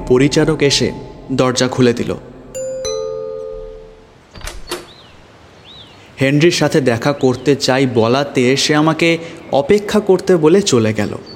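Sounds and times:
speech: 0:00.1 - 0:02.3, 0:06.2 - 0:11.3
two-note electronic doorbell chime at the door of a residential building: 0:02.6 - 0:04.2.

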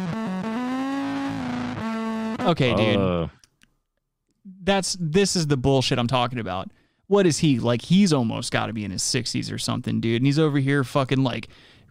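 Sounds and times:
distorted electric bass guitar: 0:00.0 - 0:02.7
speech: 0:02.4 - 0:03.4, 0:04.4 - 0:11.7.

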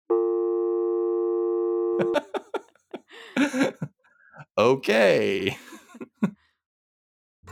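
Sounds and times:
telephone busy signal after hang-up: 0:00.1 - 0:02.1
speech: 0:02.0 - 0:02.4, 0:04.6 - 0:05.7
people laughing: 0:02.0 - 0:03.9, 0:05.3 - 0:06.4.

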